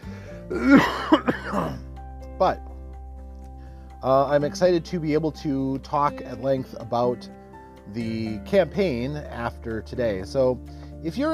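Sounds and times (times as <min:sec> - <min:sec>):
speech: 0:00.5 - 0:01.2, 0:02.4 - 0:02.7, 0:04.0 - 0:11.3
person coughing dry coughs: 0:00.5 - 0:01.8.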